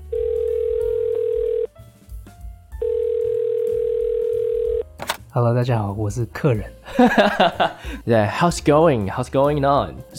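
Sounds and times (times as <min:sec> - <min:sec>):
loud steady telephone ringing tone: 0:00.0 - 0:01.7, 0:02.8 - 0:04.9
low music: 0:00.0 - 0:10.1
speech: 0:05.4 - 0:10.1
laughter: 0:06.9 - 0:07.8.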